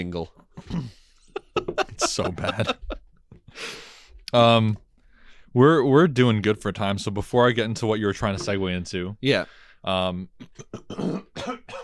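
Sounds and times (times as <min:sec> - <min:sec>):
speech: 0:00.0 - 0:01.0, 0:01.6 - 0:02.9, 0:03.6 - 0:04.8, 0:05.5 - 0:11.8
person clearing phlegm from throat: 0:00.6 - 0:01.0, 0:10.4 - 0:11.8
laughter: 0:00.7 - 0:03.0.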